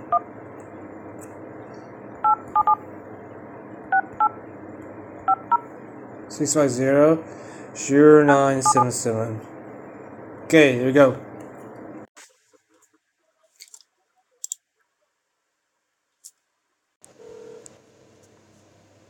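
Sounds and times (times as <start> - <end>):
telephone keypad tones dialing a United States toll-free number: 2.2 - 2.8
speech: 6.4 - 9.5, 10.5 - 11.3.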